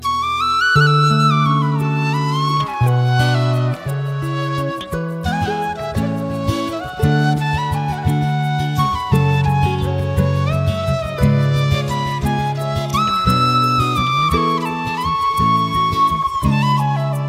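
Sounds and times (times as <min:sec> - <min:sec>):
background flute: 0:00.0 - 0:17.2.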